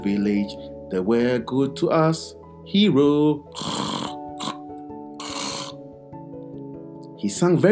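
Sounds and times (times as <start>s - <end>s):
speech: 0.0s - 3.8s, 7.2s - 7.7s
man snoring: 3.5s - 4.6s, 5.2s - 5.8s.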